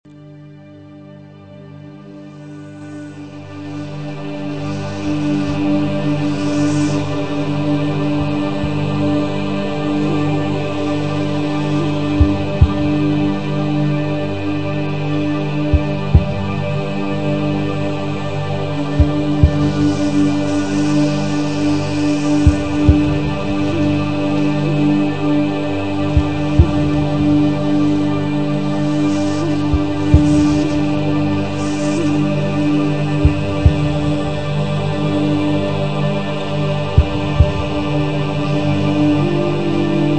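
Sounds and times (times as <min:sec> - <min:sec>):
chakra sound: 0:03.1 - 0:40.1.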